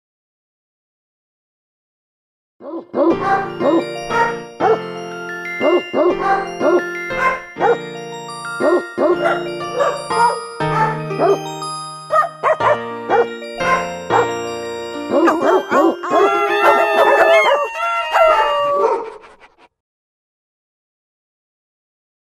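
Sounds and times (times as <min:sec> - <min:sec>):
dogs barking a birthday song melody: 0:02.6 - 0:04.9, 0:05.6 - 0:07.9, 0:08.5 - 0:11.5, 0:12.1 - 0:19.2.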